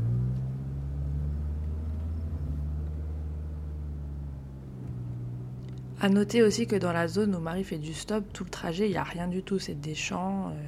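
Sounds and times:
van engine droning on a road: 0.0 - 10.6
speech: 6.0 - 10.6.

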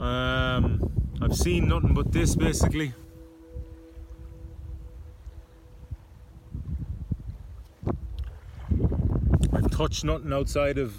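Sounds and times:
low steady wind rumble buffeting a small ocean rowing boat: 0.0 - 10.9
speech: 1.3 - 3.0, 9.8 - 10.9
ocean swells washing and sloshing around a rowing boat: 2.1 - 9.0.

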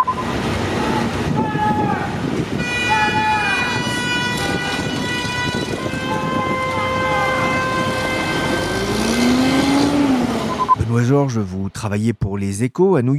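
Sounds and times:
steady roar of engines in a congested city traffic jam in Manhattan: 0.0 - 11.9
many car horns honking in a traffic jam: 2.5 - 10.9
wailing siren: 2.6 - 10.7
speech: 11.2 - 13.1.

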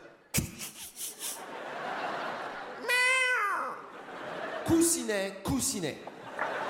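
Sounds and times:
laugh-like puffs: 0.4 - 1.6
person imitating cat meow: 2.8 - 3.8
speech: 4.7 - 6.6.

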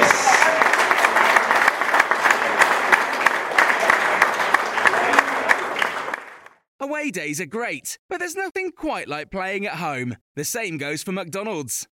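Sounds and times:
crowd clapping: 0.0 - 6.7
speech: 7.1 - 11.9.

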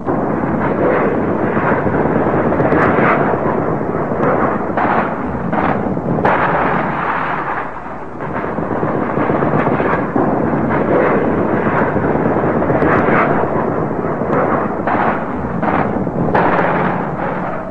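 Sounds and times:
bombs exploding: 0.0 - 17.6
heavy artillery fire: 0.0 - 17.6.

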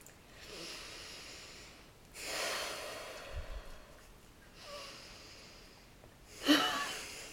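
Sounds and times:
deep breaths during a breathing exercise: 0.4 - 7.3.

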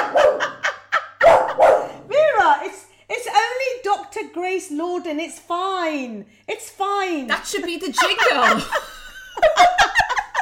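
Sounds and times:
laughter: 0.0 - 1.7, 7.8 - 10.4
dog barking in sharp yaps: 0.0 - 2.1
speech: 4.4 - 8.9.

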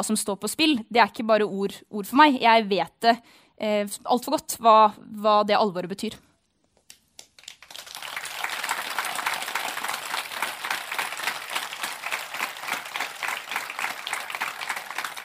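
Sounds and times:
speech: 0.0 - 6.3
audience applauding: 7.4 - 15.2.

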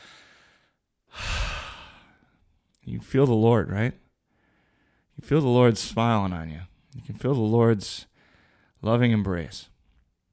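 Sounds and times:
deep breath: 0.0 - 2.4, 4.2 - 5.2, 8.1 - 8.8
speech: 2.9 - 4.0, 5.2 - 8.1, 8.8 - 9.7.

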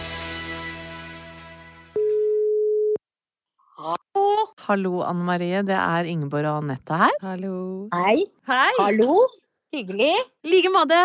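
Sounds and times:
telephone ringback tone while placing a call: 2.0 - 3.0
speech: 4.7 - 11.0.

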